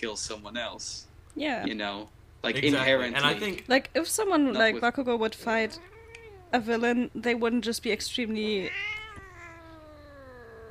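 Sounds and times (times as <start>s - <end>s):
speech: 0.0s - 5.9s, 6.5s - 9.0s
female cat meowing: 5.6s - 6.6s, 8.5s - 10.6s.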